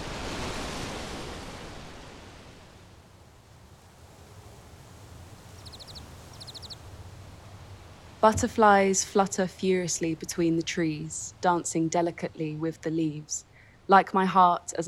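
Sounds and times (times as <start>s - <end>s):
waves crashing on a pebble shore: 0.0s - 5.5s
faint high chirps: 5.4s - 6.8s
speech: 8.2s - 14.8s.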